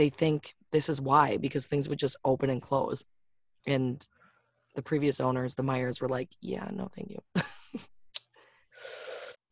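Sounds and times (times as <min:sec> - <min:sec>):
speech: 0:00.0 - 0:04.2, 0:04.8 - 0:08.0
heavy ragged breathing: 0:08.4 - 0:09.4.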